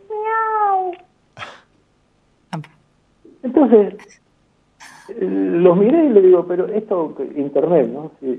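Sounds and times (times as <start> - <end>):
speech: 2.5 - 2.8, 3.4 - 4.2, 5.1 - 8.3
cat chirping: 4.0 - 4.2.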